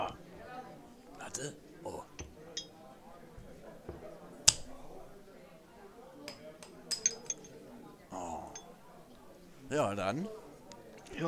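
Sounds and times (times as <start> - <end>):
soft murmur: 0.0 - 11.2
glasses clinking in a toast: 1.2 - 5.2, 6.2 - 9.3
speech: 1.3 - 2.2, 9.7 - 10.4.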